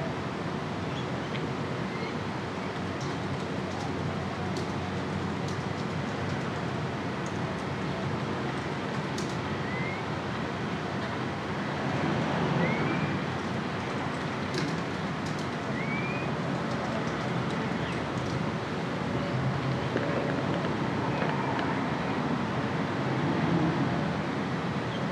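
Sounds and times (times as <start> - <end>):
passing traffic rumble: 0.0 - 25.1.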